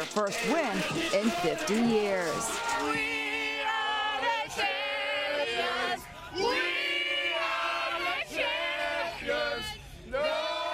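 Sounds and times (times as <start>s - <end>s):
large crowd cheering and whooping at a downtown celebration: 0.0s - 5.2s
football players singing loudly and off-key into a microphone at a downtown celebration: 0.0s - 10.7s
speech: 0.2s - 3.2s, 4.6s - 4.8s.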